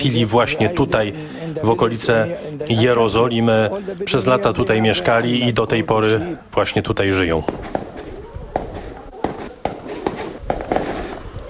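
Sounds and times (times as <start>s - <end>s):
speech: 0.0s - 7.9s
steady hiss: 0.0s - 11.4s
gunshots from shooting practice at a police post: 7.4s - 11.4s.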